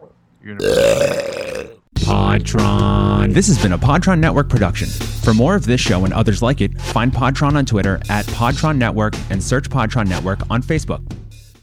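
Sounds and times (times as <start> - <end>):
speech: 0.4 - 1.8, 2.4 - 11.1
loud deep gravelly burp: 0.6 - 1.9.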